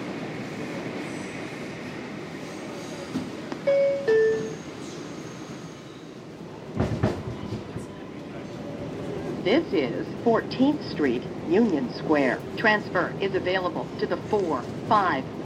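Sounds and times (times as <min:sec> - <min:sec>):
subway train rumbling along the tracks between stations: 0:00.0 - 0:15.4
subway train clattering jolt: 0:06.8 - 0:07.8
speech: 0:09.5 - 0:15.4.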